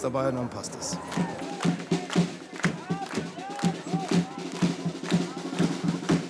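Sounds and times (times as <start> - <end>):
speech: 0.0 - 1.4
audience clapping: 0.9 - 6.2.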